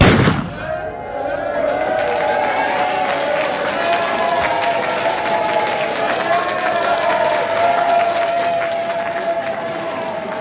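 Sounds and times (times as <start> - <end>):
starting pistol shot at the start of a race: 0.0 - 0.8
crowd noise and movement as a race group sets off: 0.0 - 10.3.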